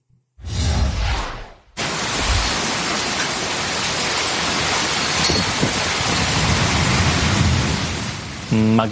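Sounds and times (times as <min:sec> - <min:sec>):
heavy monsoon rain: 0:01.8 - 0:08.9.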